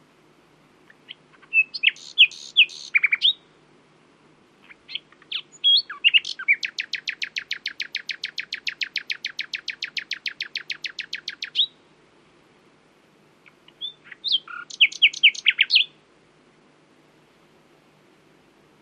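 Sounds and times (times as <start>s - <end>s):
common nightingale Luscinia megarhynchos singing: 0.8s - 3.6s, 4.6s - 11.9s, 13.4s - 16.0s.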